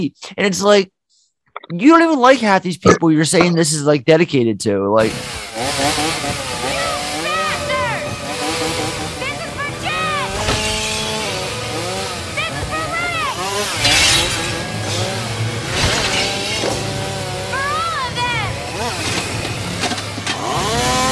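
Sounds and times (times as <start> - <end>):
speech: 0.0 - 1.0, 1.7 - 6.5
chainsaw engine revving in repeated bursts: 5.0 - 21.1
people shouting over chainsaw noise: 5.6 - 19.6.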